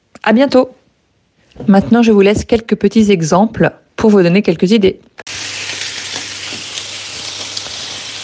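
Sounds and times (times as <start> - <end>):
speech: 0.2 - 0.8, 1.6 - 5.1
steak sizzling in a hot frying pan: 5.3 - 8.2.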